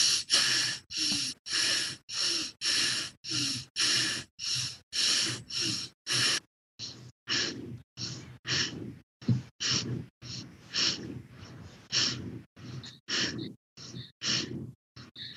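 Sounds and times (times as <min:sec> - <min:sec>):
forceful rapid breathing exercise: 0:00.0 - 0:15.3.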